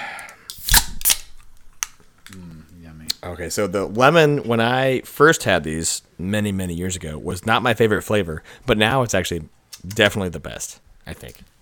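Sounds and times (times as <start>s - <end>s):
drinks being cracked open: 0.2s - 2.4s
speech: 3.2s - 11.6s.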